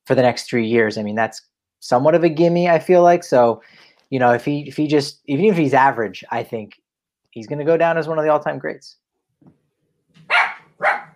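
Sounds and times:
speech: 0.1s - 6.8s, 7.4s - 9.6s
dog barking: 10.2s - 11.1s.

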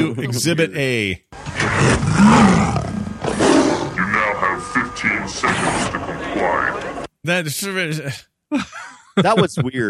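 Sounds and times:
speech: 0.0s - 1.2s, 1.8s - 2.7s, 5.0s - 9.8s
robot emitting a lion-like roar: 1.4s - 4.1s.

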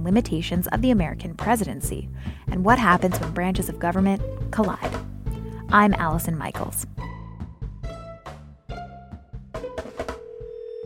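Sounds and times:
speech: 0.0s - 5.1s, 5.7s - 7.1s
sustained phone tone: 10.2s - 10.8s.

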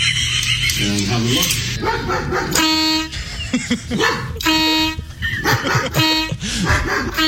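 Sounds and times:
laughter: 0.0s - 7.2s
speech: 0.8s - 7.2s
dog barking and yipping: 1.1s - 2.8s, 3.9s - 4.4s, 5.4s - 7.2s
air horn blast: 2.5s - 3.3s, 4.4s - 6.5s.

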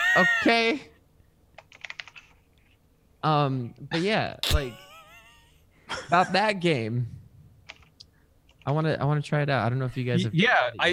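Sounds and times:
speech: 0.2s - 0.9s, 3.2s - 4.9s, 5.9s - 7.2s, 8.7s - 10.9s
typing on a computer keyboard: 1.6s - 2.4s, 7.7s - 7.9s.

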